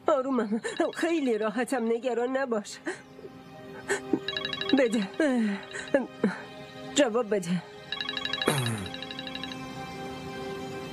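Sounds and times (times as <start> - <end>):
speech: 0.2 - 3.1, 3.9 - 7.7
mobile phone ringing: 0.7 - 1.4, 4.2 - 6.1, 7.9 - 9.7.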